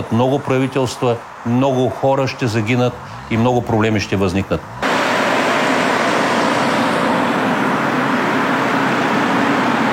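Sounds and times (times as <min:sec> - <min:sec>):
speech: 0:00.0 - 0:04.8
road traffic with cars passing slowly: 0:00.0 - 0:09.9.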